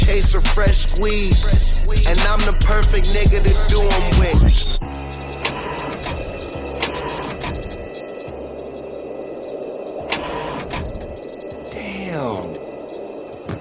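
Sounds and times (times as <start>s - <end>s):
speech: 0.1s - 4.9s
car engine cranking but failing to start: 3.5s - 8.6s, 10.0s - 11.5s
sharp clicks: 5.4s - 8.4s, 10.0s - 11.6s.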